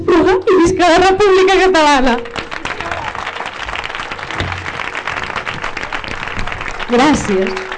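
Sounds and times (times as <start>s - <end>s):
speech: 0.0s - 2.3s, 6.9s - 7.6s
audience applause after a town festival opening speech: 2.2s - 7.7s.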